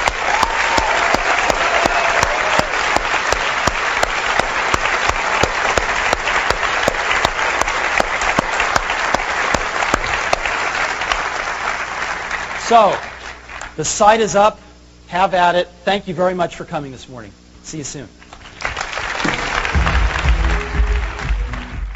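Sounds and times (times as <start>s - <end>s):
audience applause: 0.0s - 13.7s, 18.3s - 21.9s
speech: 12.7s - 13.1s, 13.8s - 18.2s.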